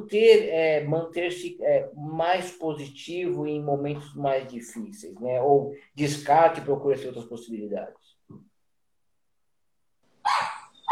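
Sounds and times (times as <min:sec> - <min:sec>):
speech: 0:00.0 - 0:08.5
dog barking: 0:10.2 - 0:10.9.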